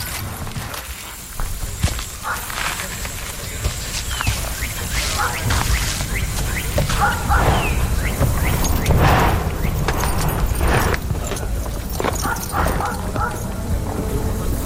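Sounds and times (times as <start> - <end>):
busy noisy background: 0.0 - 14.6
horse hooves clip-clopping: 0.0 - 14.6
dog barking and yipping: 5.0 - 5.6, 6.8 - 7.8, 12.2 - 13.5.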